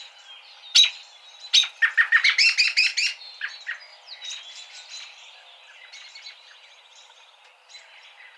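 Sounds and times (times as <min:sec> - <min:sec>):
American robin call series: 0:00.7 - 0:04.4.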